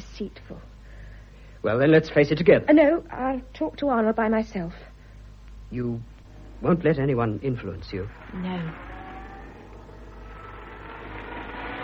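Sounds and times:
speech: 0:00.2 - 0:00.8, 0:01.6 - 0:04.9, 0:05.7 - 0:08.9
car engine rumbling: 0:07.9 - 0:11.8.

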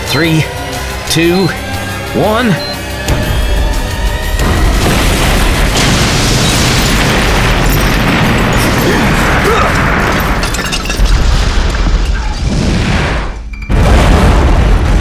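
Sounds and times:
speech: 0:00.1 - 0:02.7
bomb explosion: 0:03.1 - 0:14.9.

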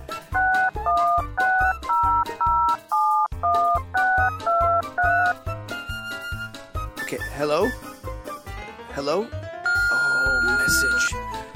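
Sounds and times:
touch-tone phone keypad dialing beeps: 0:00.4 - 0:05.4, 0:09.7 - 0:11.2
speech: 0:07.4 - 0:07.8, 0:09.0 - 0:09.4, 0:10.7 - 0:11.2.

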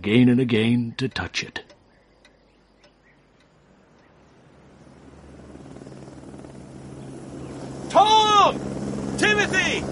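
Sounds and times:
speech: 0:00.0 - 0:01.7
helicopter rotor chop and engine hum: 0:04.4 - 0:09.9.

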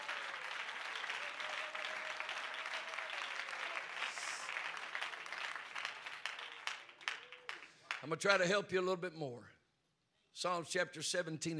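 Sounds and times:
large audience clapping in praise: 0:00.0 - 0:08.2
speech: 0:08.0 - 0:09.6, 0:10.4 - 0:11.5.

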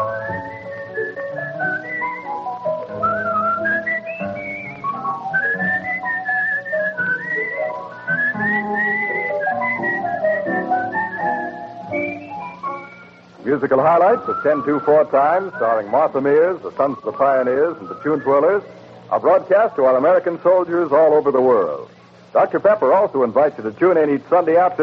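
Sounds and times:
whistled melody: 0:00.0 - 0:18.9
steady instrumental accompaniment: 0:00.0 - 0:19.1
speech: 0:13.5 - 0:24.8.

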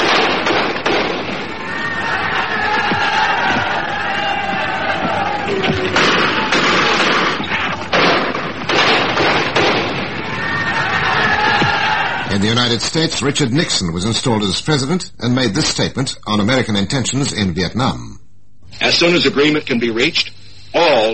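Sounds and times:
gunshots: 0:00.0 - 0:03.6, 0:05.7 - 0:12.0
loud chaotic crowd shouting: 0:01.3 - 0:07.5, 0:10.0 - 0:12.4
speech: 0:12.7 - 0:21.1.

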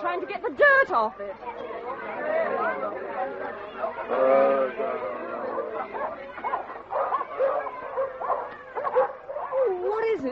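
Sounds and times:
people chattering loudly: 0:00.0 - 0:10.3
speech: 0:00.1 - 0:06.8, 0:09.8 - 0:10.3
dogs growling: 0:03.9 - 0:10.1
dogs whimpering: 0:05.8 - 0:10.3.

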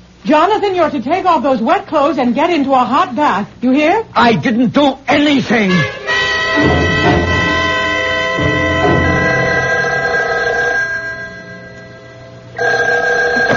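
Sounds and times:
speech: 0:00.2 - 0:06.8
telephone bell ringing in a metallic trill: 0:06.3 - 0:13.5.

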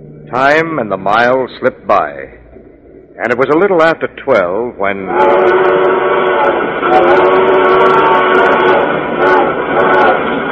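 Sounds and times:
speech: 0:00.3 - 0:02.4, 0:03.2 - 0:07.7
train whistle blowing: 0:05.0 - 0:10.5.

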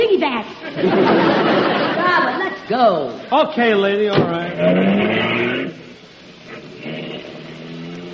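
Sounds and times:
speech: 0:00.2 - 0:01.4, 0:02.1 - 0:05.8
laughter: 0:00.6 - 0:02.7
voice imitating a taxi engine revving and driving off: 0:04.5 - 0:05.9, 0:06.5 - 0:08.1.

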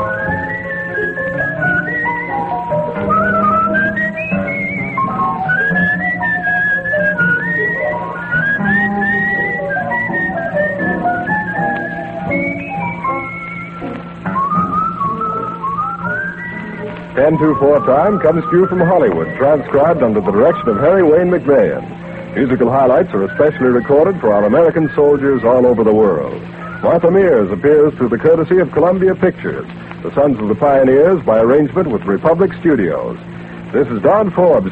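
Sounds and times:
instrumental accompaniment: 0:00.0 - 0:34.7
person whistling a tune: 0:00.1 - 0:21.7, 0:23.2 - 0:27.4
speech: 0:17.3 - 0:34.7.

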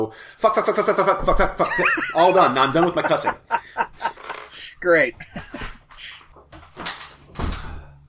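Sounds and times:
speech: 0:00.0 - 0:03.5, 0:04.8 - 0:06.1
laughter: 0:01.6 - 0:05.7
door scraping and rattling as it is pulled: 0:04.0 - 0:04.7, 0:06.4 - 0:07.7
door pulled shut with a solid closing thud: 0:06.5 - 0:07.9.

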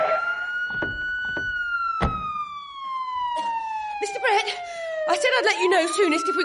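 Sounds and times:
police car siren wailing: 0:00.0 - 0:06.4
thumps and knocks: 0:00.6 - 0:02.4
speech: 0:04.3 - 0:06.4.

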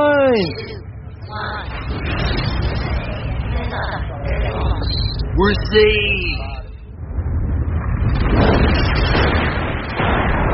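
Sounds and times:
speech: 0:00.0 - 0:02.4, 0:05.4 - 0:06.4
massive meteor explosion roaring and rumbling: 0:00.0 - 0:10.5.

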